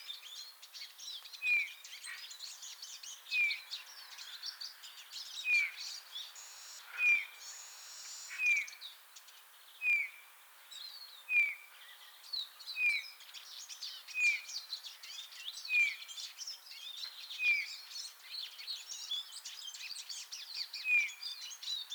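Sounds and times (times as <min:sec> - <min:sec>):
other small birds twittering and chattering: 0:00.0 - 0:21.9.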